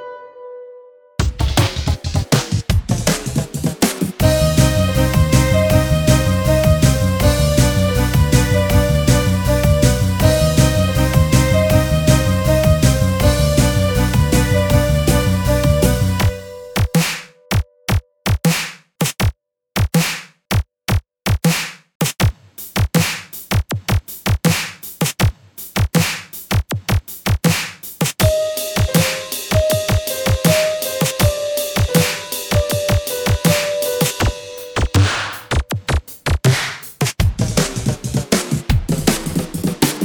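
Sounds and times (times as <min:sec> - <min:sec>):
drums: 0:01.2 - 0:40.0.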